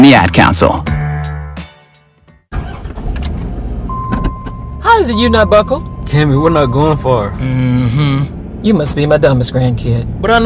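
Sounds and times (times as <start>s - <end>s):
speech: 0.1s - 0.9s, 5.0s - 10.4s
big old truck engine cranking and catching: 2.5s - 4.6s
big old truck engine rough steady rumble: 2.5s - 10.4s.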